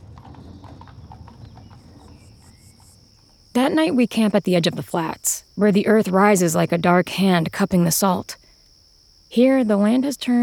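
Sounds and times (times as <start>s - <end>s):
horse hooves clopping while pulling a wagon: 0.0s - 3.4s
speech: 3.6s - 8.4s, 9.3s - 10.4s.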